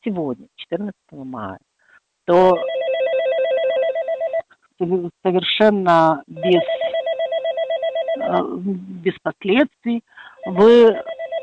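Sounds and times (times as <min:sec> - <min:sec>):
speech: 0:00.0 - 0:01.7, 0:02.3 - 0:03.5, 0:04.8 - 0:06.8, 0:08.3 - 0:11.1
intercom ringing with a pulsing warbling electronic tone: 0:02.3 - 0:04.4, 0:06.4 - 0:08.6, 0:10.3 - 0:11.4.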